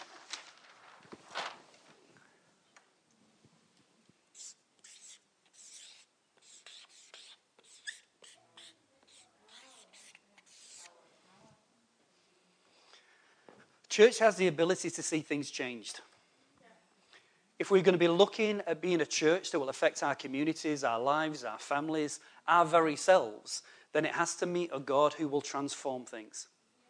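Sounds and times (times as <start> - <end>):
soft noise: 0.0 - 26.8
pen scratching across a fresh sheet of paper: 4.4 - 11.0
speech: 14.0 - 16.1, 17.6 - 26.5.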